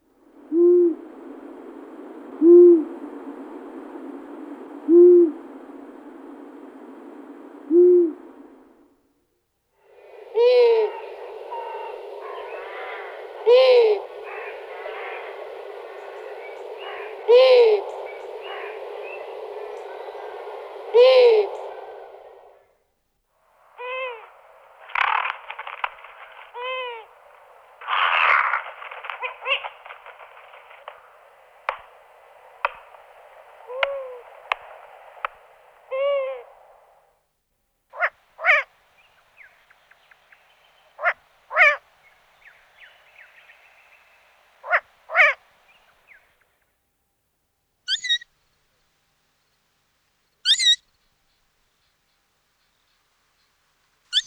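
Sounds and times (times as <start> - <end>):
A. otus owl calls: 0.3 - 8.6, 9.9 - 22.6, 23.7 - 37.0, 38.0 - 38.7, 41.0 - 41.8, 42.4 - 45.4, 47.9 - 48.3, 50.4 - 50.8.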